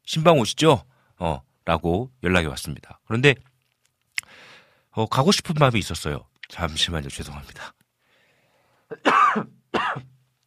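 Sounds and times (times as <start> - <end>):
speech: 0.1 - 3.5, 5.0 - 7.8, 8.9 - 9.6
harsh coughs: 8.9 - 10.2.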